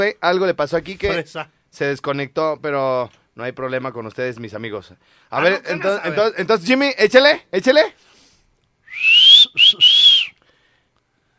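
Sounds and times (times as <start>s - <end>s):
speech: 0.0s - 8.1s, 9.0s - 9.9s
person whistling loudly: 8.8s - 10.4s.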